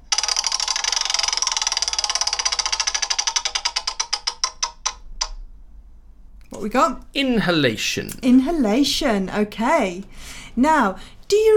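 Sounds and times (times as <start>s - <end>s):
prize wheel spinning: 0.0s - 5.4s
speech: 6.6s - 11.5s.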